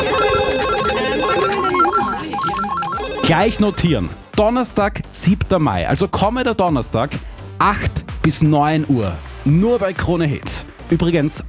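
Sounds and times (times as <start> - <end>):
several telephones ringing in a radio studio: 0.0 - 4.1
speech: 3.3 - 11.4.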